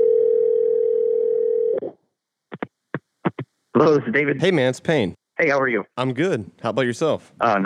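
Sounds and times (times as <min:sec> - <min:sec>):
telephone dial tone of an outgoing call: 0:00.0 - 0:01.9
speech: 0:03.8 - 0:07.6.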